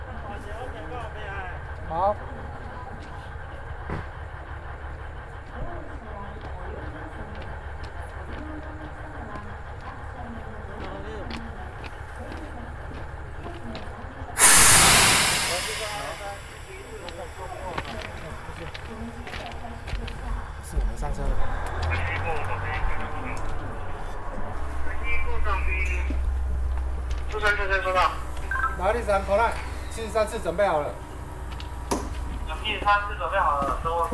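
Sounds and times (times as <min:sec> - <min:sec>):
steady rumbling rail background: 0:00.0 - 0:34.1
speech: 0:01.9 - 0:02.5, 0:29.0 - 0:31.0, 0:32.8 - 0:34.1
train brakes releasing air hiss: 0:14.4 - 0:18.9, 0:27.9 - 0:31.1.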